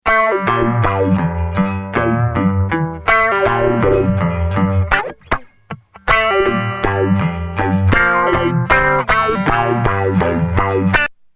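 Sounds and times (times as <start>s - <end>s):
guitar through tube compressor and EQ: 0.0s - 11.2s.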